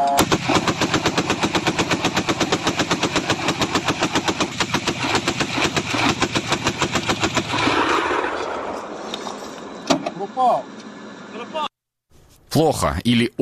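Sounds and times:
automatic anti-aircraft cannon firing at drones: 0:00.2 - 0:09.0
speech: 0:12.6 - 0:13.3.

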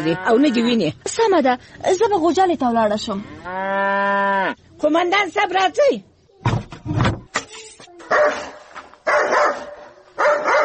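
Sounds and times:
speech: 0:00.0 - 0:06.6
dog barking: 0:08.1 - 0:10.6.

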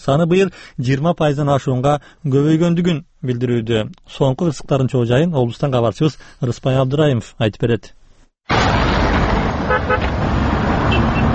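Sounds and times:
speech: 0:00.0 - 0:08.8, 0:09.7 - 0:10.3
slow-moving cars at a roundabout: 0:08.5 - 0:11.3
car horn toots: 0:09.6 - 0:10.2, 0:10.8 - 0:11.3.

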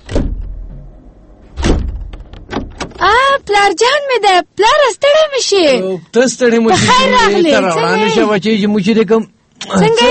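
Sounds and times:
door being opened in answer to a knock: 0:00.0 - 0:03.1
speech: 0:03.0 - 0:10.0.

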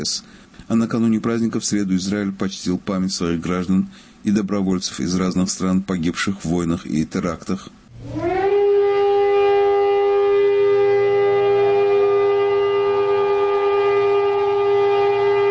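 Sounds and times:
speech: 0:00.0 - 0:08.3
loud steady wailing memorial siren: 0:07.9 - 0:15.5.

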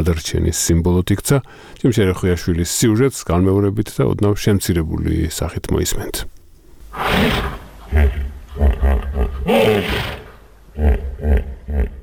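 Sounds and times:
speech: 0:00.0 - 0:06.3, 0:06.9 - 0:10.1
16-year-old hippopotamus grunting roars in open elephant enclosure at Tbilisi zoo: 0:06.9 - 0:12.0.

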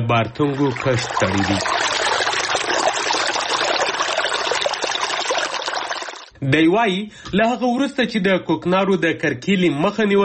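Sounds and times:
speech: 0:00.1 - 0:02.1, 0:06.4 - 0:10.2
irrigation water rushing and trickling over a farmer's field: 0:00.3 - 0:06.3.

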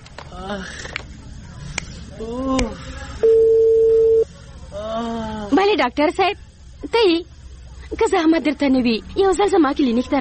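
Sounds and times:
speech: 0:00.3 - 0:01.1, 0:02.2 - 0:03.6, 0:04.7 - 0:07.3, 0:07.9 - 0:10.1
steady electronic telephone tone: 0:03.2 - 0:04.3.

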